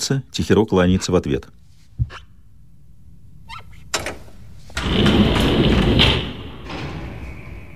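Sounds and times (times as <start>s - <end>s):
speech: 0.0s - 2.3s
elevator doors closing: 3.9s - 7.7s.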